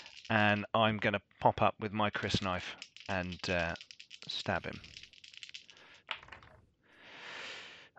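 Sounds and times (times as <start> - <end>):
twelve-sided dice clattering on a hard surface during a tabletop role-playing game: 0.0 - 0.6, 2.2 - 6.6
speech: 0.3 - 5.0.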